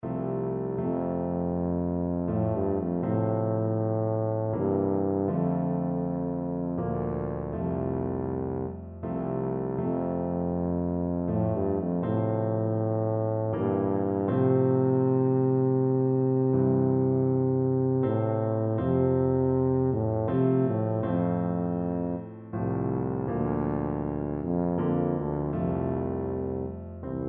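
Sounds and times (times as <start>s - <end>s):
tuba melody: 0.0s - 27.2s.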